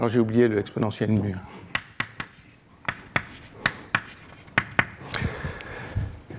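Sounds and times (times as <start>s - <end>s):
speech: 0.0s - 1.7s
handwriting of equations during a lecture: 1.2s - 5.0s.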